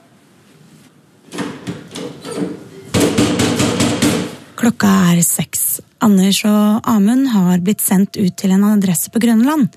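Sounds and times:
police officers knocking heavily on an apartment door: 0:02.9 - 0:04.4
speech: 0:04.6 - 0:09.7.

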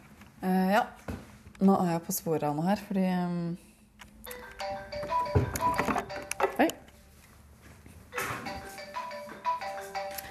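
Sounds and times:
speech: 0:00.4 - 0:03.7
phone ringtone of bright electronic tones: 0:04.3 - 0:06.8, 0:08.1 - 0:10.3.

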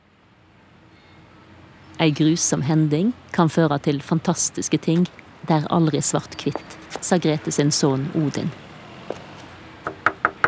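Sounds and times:
speech: 0:02.0 - 0:08.7
knocking on a door: 0:09.8 - 0:10.4.

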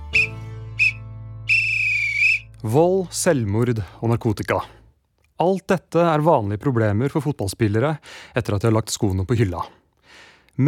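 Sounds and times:
referee's whistle blowing: 0:00.0 - 0:02.6
speech: 0:02.6 - 0:04.8, 0:05.4 - 0:10.6.

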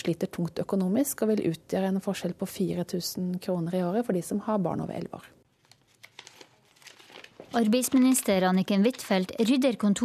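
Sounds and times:
speech: 0:00.0 - 0:05.4, 0:07.5 - 0:10.0
paper being sorted and crumpled: 0:05.5 - 0:10.0.

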